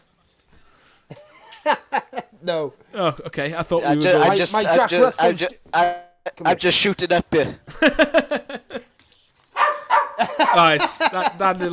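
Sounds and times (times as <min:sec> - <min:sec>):
speech: 0:01.1 - 0:01.8, 0:02.4 - 0:08.4, 0:10.6 - 0:11.7
laughter: 0:01.1 - 0:02.4, 0:03.8 - 0:05.5, 0:07.2 - 0:08.9, 0:10.2 - 0:11.7
dog barking: 0:09.5 - 0:10.7.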